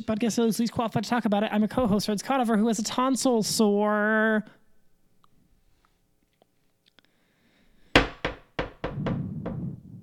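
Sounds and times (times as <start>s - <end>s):
speech: 0.0s - 4.6s
sharp ringing hammer knocks: 8.0s - 9.7s.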